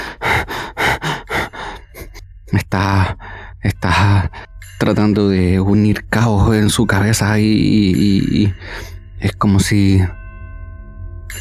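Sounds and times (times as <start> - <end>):
heavy agitated ragged breathing: 0.0 - 3.6, 8.5 - 9.1
speech: 2.5 - 10.2.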